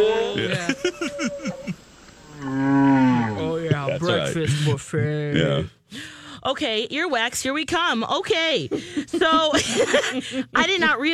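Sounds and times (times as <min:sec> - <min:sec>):
speech: 0:00.0 - 0:01.5, 0:04.4 - 0:11.1
laughter: 0:00.0 - 0:01.8, 0:03.4 - 0:05.6, 0:08.7 - 0:11.1
whale calling with groans and a resonant moan: 0:00.0 - 0:03.4.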